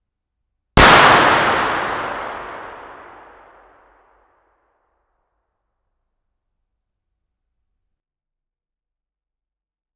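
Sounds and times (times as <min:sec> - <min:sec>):
gunshots: 0:00.8 - 0:03.4.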